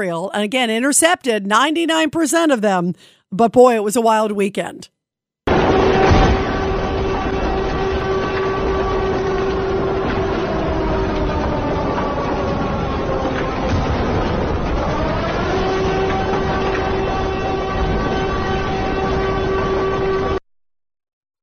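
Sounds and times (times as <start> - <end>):
speech: 0.0 - 5.0
air raid siren in Israel wailing during rocket attack: 5.5 - 20.4.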